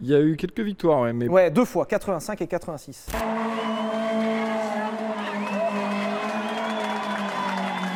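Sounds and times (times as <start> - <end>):
speech: 0.0 - 3.5
Peugeot 205 Turbo 16 Evolution Group B rally car engine droning: 3.2 - 7.9
crowd murmuring and cheering: 3.2 - 7.9.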